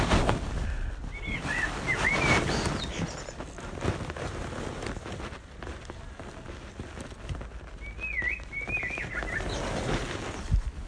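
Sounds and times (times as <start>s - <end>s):
steady rustling rain-like wash: 0.0s - 10.8s
blackbirds calling outdoors with fluting whistled phrases: 1.1s - 3.4s, 7.8s - 9.7s.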